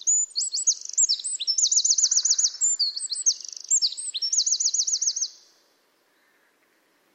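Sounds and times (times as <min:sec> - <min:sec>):
Eurasian wren Troglodytes troglodytes singing loud high chips and trills: 0:00.0 - 0:05.6.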